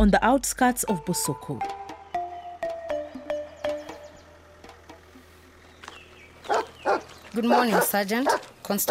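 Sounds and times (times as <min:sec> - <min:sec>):
speech: 0:00.0 - 0:01.8, 0:07.4 - 0:08.9
excited police dogs yelping and barking: 0:06.4 - 0:08.9.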